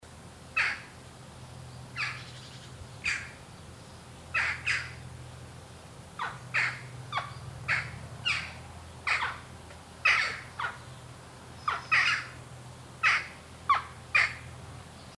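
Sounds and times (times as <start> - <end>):
jackdaw calling: 0.5 - 1.1, 1.9 - 3.5, 4.2 - 5.1, 6.1 - 14.6.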